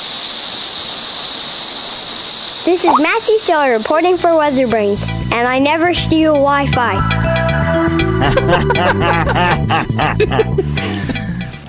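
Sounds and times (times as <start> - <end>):
cicada buzzing: 0.0 - 6.3
speech: 2.6 - 10.9
laughter: 7.9 - 11.6.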